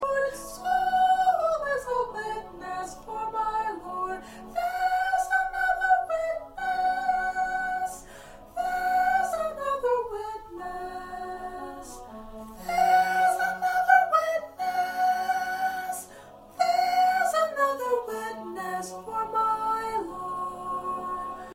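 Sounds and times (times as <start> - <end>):
first soprano singing: 0.0 - 21.5.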